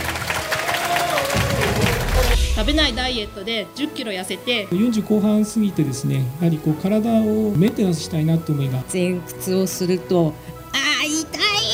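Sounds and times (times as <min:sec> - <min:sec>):
audience applauding at the start of a contest: 0:00.0 - 0:03.0
speech: 0:02.6 - 0:10.6.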